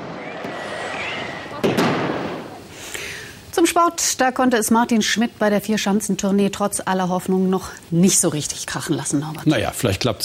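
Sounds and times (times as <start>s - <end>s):
sharp fireworks bangs: 0.0s - 2.9s
steady hiss of crackling: 0.0s - 10.2s
speech: 3.8s - 10.2s.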